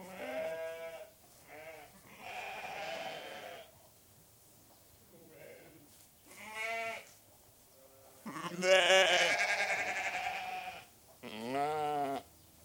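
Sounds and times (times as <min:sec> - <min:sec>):
restless sheep bleating in a shed: 0:00.0 - 0:03.7, 0:05.3 - 0:07.1, 0:07.8 - 0:12.3.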